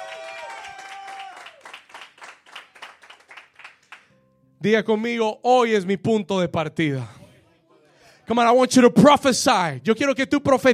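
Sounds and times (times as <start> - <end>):
audience cheering: 0.0 - 2.0
audience clapping: 0.0 - 4.1
speech: 4.6 - 7.2, 8.3 - 10.7.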